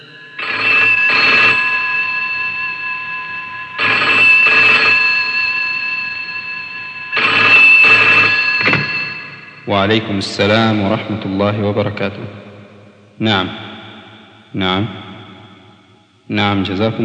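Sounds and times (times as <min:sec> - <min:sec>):
telephone ringing on an outgoing call: 0:00.0 - 0:10.2
speech: 0:09.8 - 0:12.5, 0:13.2 - 0:13.7, 0:14.5 - 0:15.0, 0:16.3 - 0:17.0.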